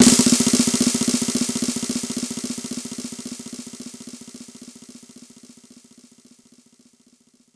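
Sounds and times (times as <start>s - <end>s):
snare roll on Korg 05R-W: 0.0s - 1.4s.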